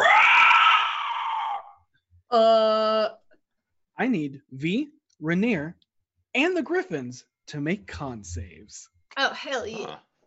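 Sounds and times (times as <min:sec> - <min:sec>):
griffin shriek ringing through the sky: 0:00.0 - 0:01.8
speech: 0:02.3 - 0:03.2, 0:04.0 - 0:10.1.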